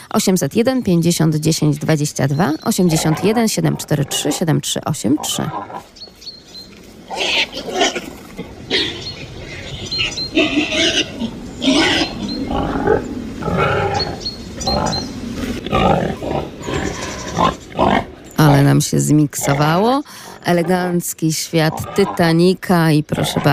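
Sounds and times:
speech: 0.1 - 6.1, 7.1 - 8.1, 10.4 - 15.1, 15.7 - 16.5, 18.7 - 23.5
wild pig-like animal grunting in a forest: 2.7 - 6.0, 7.0 - 21.0, 21.6 - 22.4, 23.1 - 23.5
wild pig-like animal snorting in a forest: 2.9 - 6.0, 7.1 - 18.7.

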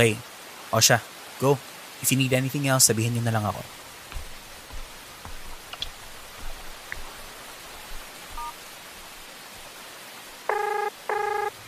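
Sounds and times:
speech: 0.0 - 3.8
soft hiss: 0.0 - 11.6
telephone ringing while a call is placed: 10.5 - 11.6.

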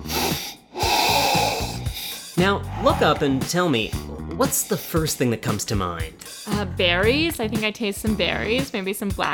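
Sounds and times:
loud nasal sniffs of wine in a glass during a wine tasting: 0.0 - 5.1
speech: 2.4 - 9.3.

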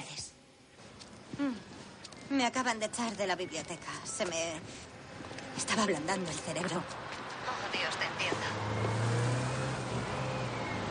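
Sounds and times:
broadband road noise: 0.4 - 10.8
speech: 1.4 - 1.7, 2.3 - 4.9, 5.7 - 7.1
bus passing: 2.5 - 10.8.

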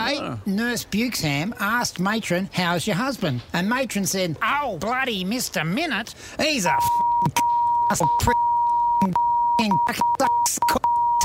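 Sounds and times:
speech: 0.1 - 8.4, 9.0 - 11.2
high-pitched censor bleep over a swear word: 6.9 - 11.2.

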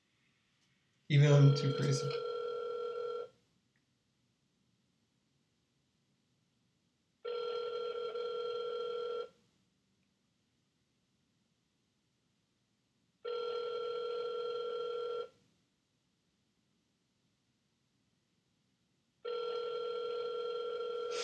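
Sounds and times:
speech: 1.1 - 2.3
ringback tone of an unanswered telephone call: 1.2 - 3.3, 7.3 - 9.3, 13.3 - 15.3, 19.3 - 21.1.

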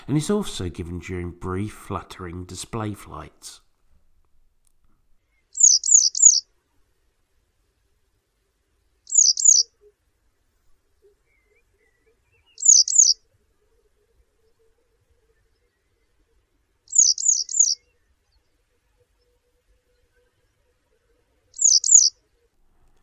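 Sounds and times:
speech: 0.0 - 3.6
yellow wagtail calls: 5.5 - 6.4, 9.1 - 9.7, 11.0 - 13.2, 16.9 - 18.0, 21.6 - 22.1.

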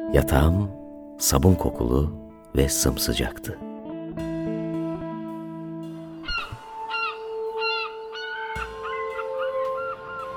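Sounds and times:
speech: 0.1 - 3.7
seagull calling in the morning: 6.3 - 10.3.

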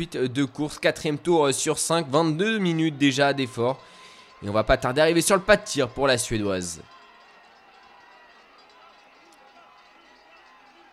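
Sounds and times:
speech: 0.0 - 7.0
trackside spectators shouting encouragement: 0.0 - 10.9.

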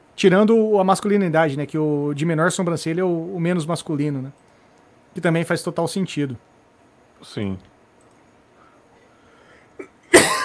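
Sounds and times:
speech: 0.2 - 4.4, 5.2 - 6.5, 7.2 - 7.7
person coughing harshly: 9.8 - 10.4.

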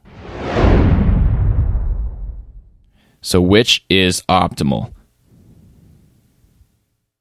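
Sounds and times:
sweeping whoosh sound effect with deep low roar: 0.0 - 2.8
speech: 3.2 - 5.0.

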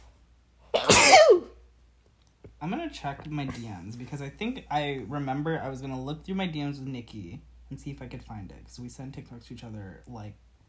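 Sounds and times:
sneeze: 0.7 - 1.6
speech: 2.6 - 10.4.

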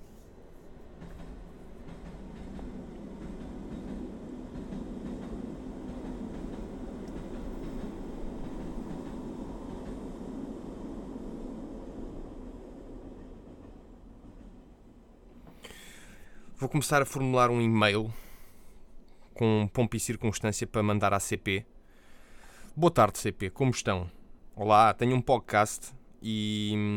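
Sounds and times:
train rumbling along the rails with rhythmic rattling: 0.0 - 19.1
speech: 16.6 - 18.2, 19.4 - 21.7, 22.8 - 26.9.

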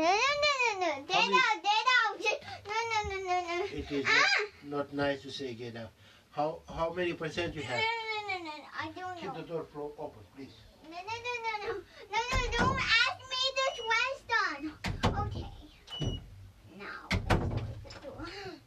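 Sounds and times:
child talking: 0.0 - 4.6, 7.8 - 9.4, 10.8 - 15.9, 17.8 - 18.6
adult talking: 3.6 - 8.1, 9.0 - 10.7
speech: 3.8 - 8.0, 8.8 - 12.9
door pushed shut with thuds and knocks: 12.3 - 13.0, 14.8 - 16.3, 17.1 - 18.0.

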